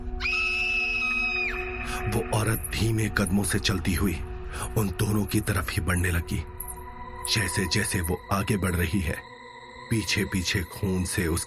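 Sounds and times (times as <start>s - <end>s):
woman screaming: 0.2s - 1.6s
speech: 2.0s - 6.5s, 7.2s - 9.3s, 9.9s - 11.4s.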